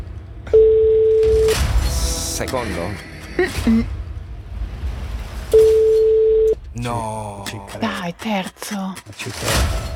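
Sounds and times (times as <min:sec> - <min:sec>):
telephone ringback tone on an outgoing call: 0:00.5 - 0:01.6, 0:05.6 - 0:06.6
speech: 0:02.4 - 0:04.0, 0:06.8 - 0:09.9.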